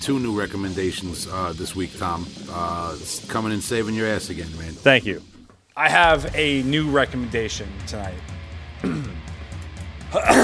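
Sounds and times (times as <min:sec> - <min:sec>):
speech: 0:00.0 - 0:09.1, 0:10.1 - 0:10.4
person clearing throat: 0:08.8 - 0:09.3, 0:10.1 - 0:10.4.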